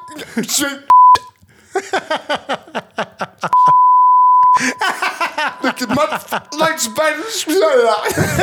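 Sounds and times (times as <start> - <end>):
lively speech: 0.0 - 1.3, 4.6 - 8.4
censorship bleeps from a bleep app on a phone: 0.9 - 1.4, 3.5 - 8.0
chuckling voices: 1.5 - 8.4.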